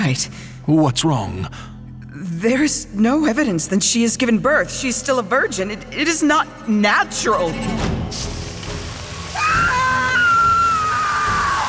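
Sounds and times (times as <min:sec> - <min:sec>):
speech: 0:00.1 - 0:01.7, 0:02.4 - 0:08.4
rushing watery noise: 0:08.2 - 0:11.6
woman screaming in agony: 0:09.3 - 0:11.6.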